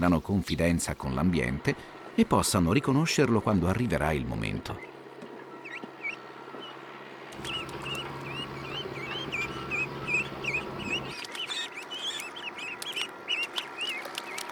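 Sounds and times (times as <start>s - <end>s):
speech: 0.0s - 5.0s
young ducks peeping in a flooded rice paddy: 5.6s - 6.8s, 7.4s - 14.4s.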